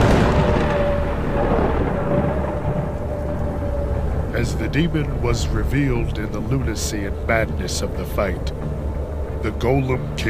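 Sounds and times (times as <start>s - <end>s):
loud rolling thunder: 0.0s - 7.6s
speech: 4.4s - 10.2s.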